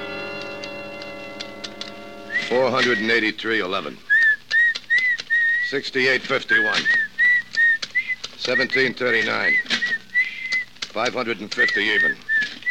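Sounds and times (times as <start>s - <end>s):
person whistling a tune: 2.3s - 3.1s, 4.1s - 5.7s, 6.5s - 10.7s, 11.6s - 12.6s
man talking: 2.4s - 4.1s, 5.7s - 7.1s, 8.4s - 9.7s, 10.9s - 12.3s.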